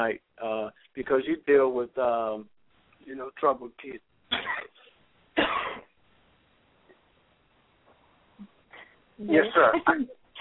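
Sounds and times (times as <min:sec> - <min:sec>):
speech: 0:00.0 - 0:00.3, 0:01.0 - 0:04.8, 0:09.2 - 0:10.2
loud harsh cough: 0:04.3 - 0:05.9.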